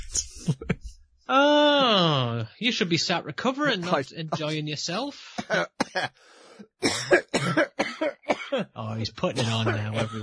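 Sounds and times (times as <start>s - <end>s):
laughter: 0.4s - 0.8s, 3.6s - 4.6s, 8.8s - 10.2s
speech: 0.5s - 0.7s, 1.3s - 1.6s, 2.2s - 10.2s
harsh heavy coughing fit: 3.8s - 4.6s, 5.2s - 6.2s, 6.8s - 10.2s.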